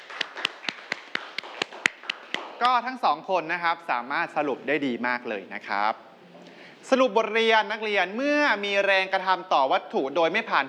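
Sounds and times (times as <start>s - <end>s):
students clapping for a classmate in a classroom: 0.0s - 2.8s
speech: 2.6s - 6.1s, 6.9s - 10.6s.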